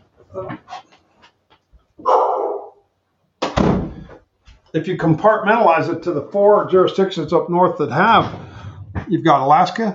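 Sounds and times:
speech: 0:00.4 - 0:00.8, 0:04.7 - 0:08.5, 0:09.1 - 0:09.9
dog barking in another room: 0:02.0 - 0:02.8.

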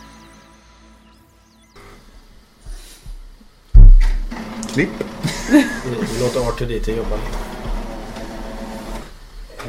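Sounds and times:
coffee machine whirring and humming: 0:04.0 - 0:09.6
speech: 0:04.8 - 0:07.5.

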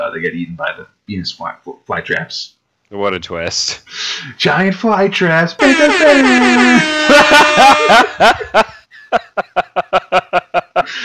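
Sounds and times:
speech: 0:00.1 - 0:11.0
voice imitating an air horn: 0:05.6 - 0:08.1
short laughing bursts: 0:06.1 - 0:08.8.

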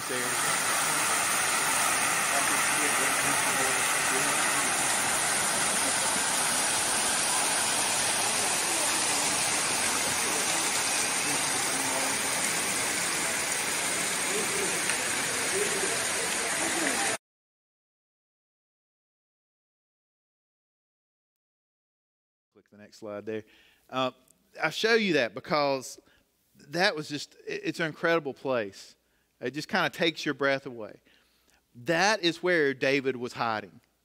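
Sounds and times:
waterfall rushing water: 0:00.0 - 0:17.2
speech: 0:22.7 - 0:31.1, 0:31.8 - 0:33.8.

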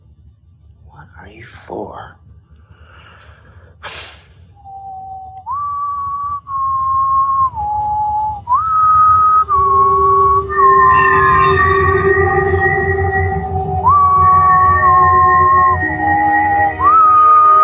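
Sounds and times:
steady low hum: 0:00.0 - 0:17.6
speech: 0:01.2 - 0:02.3
breathy burst: 0:02.7 - 0:04.6
whistle tones activating a machine: 0:04.5 - 0:17.6
layered chiming tones: 0:09.4 - 0:17.6.

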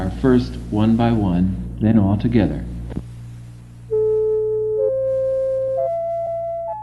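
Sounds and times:
faint low hum: 0:00.0 - 0:06.8
speech: 0:00.2 - 0:02.7
electronic tones from a reading machine for the blind: 0:03.9 - 0:06.8.

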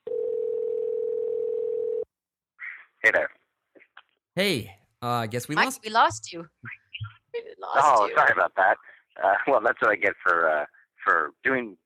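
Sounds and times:
steady telephone tone as a call is placed to a cell phone: 0:00.0 - 0:02.1
speech: 0:03.0 - 0:03.4, 0:04.4 - 0:06.8, 0:07.7 - 0:11.8.

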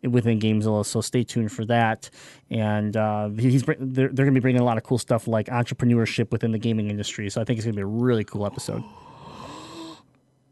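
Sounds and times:
speech: 0:00.0 - 0:09.1
excited gasp: 0:08.5 - 0:10.0.

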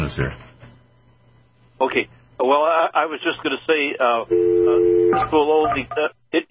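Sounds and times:
speech: 0:00.1 - 0:00.5, 0:01.8 - 0:06.4
shifting telephone dialing tones: 0:04.3 - 0:06.0.

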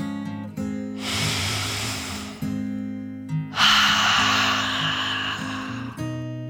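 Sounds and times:
soft sustained music: 0:00.9 - 0:06.4
dragon taking a deep breath in a dark cave: 0:01.0 - 0:02.6, 0:03.6 - 0:06.2.

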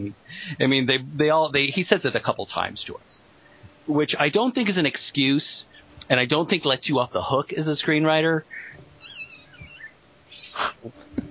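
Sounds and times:
speech: 0:00.0 - 0:03.2, 0:03.9 - 0:08.8, 0:10.6 - 0:11.1
house cat giving warbling chirps and mews: 0:09.0 - 0:10.7.

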